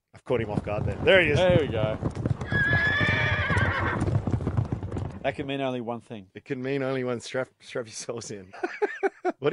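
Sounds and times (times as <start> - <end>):
rapid clatter of horse hooves: 0.2 - 5.8
speech: 0.3 - 2.3, 5.2 - 9.5
loud horse whinny: 2.1 - 5.2
laughter: 8.5 - 9.5.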